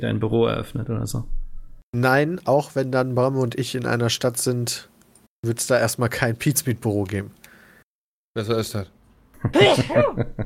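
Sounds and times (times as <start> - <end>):
speech: 0.0 - 7.4, 8.4 - 10.4
laughter: 9.4 - 10.4
person sneezing: 9.6 - 10.2.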